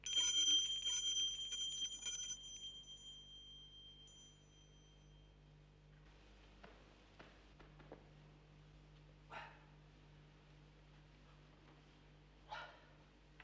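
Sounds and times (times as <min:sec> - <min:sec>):
door bell pulled forcefully and jangling: 0:00.0 - 0:05.3.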